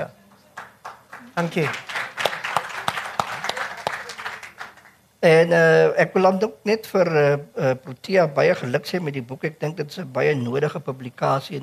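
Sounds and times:
audience applause at a book launch event: 0.6 - 5.0
speech: 1.4 - 1.9, 5.2 - 11.6.

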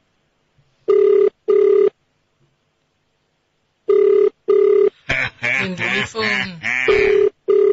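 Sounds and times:
double-pulse ringback tones on an outgoing telephone call: 0.9 - 1.9, 3.9 - 4.9, 6.9 - 7.7
laughter: 5.0 - 7.2
person answering the phone and talking loudly: 5.4 - 6.8.

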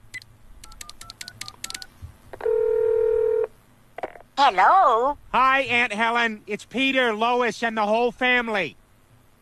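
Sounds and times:
telephone keypad dialing beeps: 0.6 - 2.6
steady telephone tone: 2.4 - 3.5
speech: 4.4 - 8.8.

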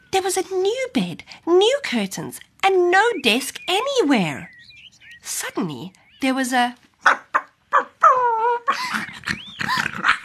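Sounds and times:
speech: 0.1 - 4.5, 5.2 - 7.2
small fierce dog barking: 7.0 - 8.7
small fierce dog whining, yelping and whimpering: 7.1 - 10.2.

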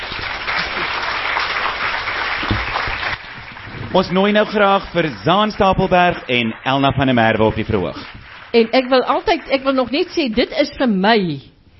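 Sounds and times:
audience applause: 0.0 - 10.9
speech: 3.9 - 11.5.

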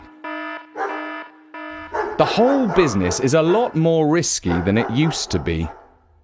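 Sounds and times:
loud steady pulsing electronic alarm: 0.0 - 3.2
dogs barking: 0.7 - 1.2, 1.8 - 6.0
speech: 2.2 - 5.8.

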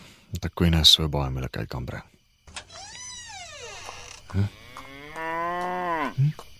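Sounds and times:
speech: 0.4 - 2.1, 4.3 - 4.6, 6.2 - 6.5
cow mooing: 4.4 - 6.2.

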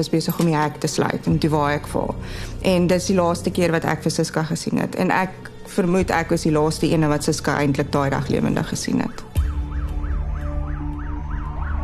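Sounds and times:
speech: 0.0 - 9.3
ambulance and tow truck sirens racing past a house: 9.0 - 11.8.

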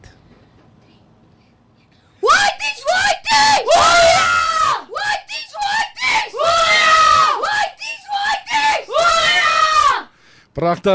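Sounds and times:
group of schoolchildren shouting a war cry in unison: 2.2 - 10.1
speech: 10.6 - 10.9.

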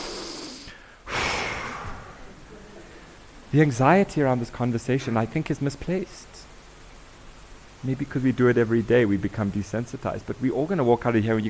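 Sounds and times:
group of people in a room inhaling deeply and exhaling together: 0.0 - 3.2
speech: 3.5 - 6.4, 7.8 - 11.4.

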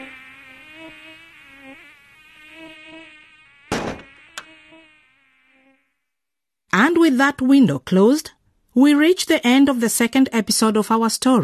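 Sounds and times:
high-pitched whine of mosquitoes: 0.0 - 6.4
sharp smack: 3.7 - 4.1
speech: 7.0 - 11.4.

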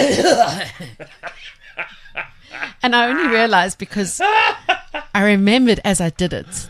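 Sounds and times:
person imitating a gruff old man's cough: 0.0 - 1.0
speech: 0.0 - 1.3, 2.8 - 4.6, 5.2 - 6.6
laughter: 0.0 - 3.5, 4.1 - 5.1.

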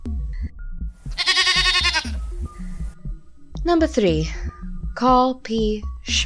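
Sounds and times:
steady low thumping rhythm: 0.0 - 6.2
mountain goat bleating loudly: 1.1 - 2.2
speech: 3.6 - 6.2.

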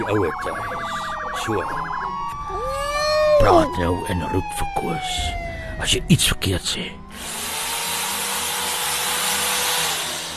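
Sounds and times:
speech: 0.0 - 2.8, 3.4 - 7.5
power drill running: 7.1 - 10.3.

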